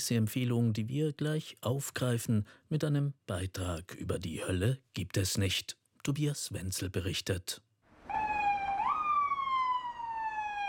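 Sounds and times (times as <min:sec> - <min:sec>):
speech: 0:00.0 - 0:07.7
ambulance siren wailing as the ambulance passes across a city square in Prague: 0:08.0 - 0:10.6.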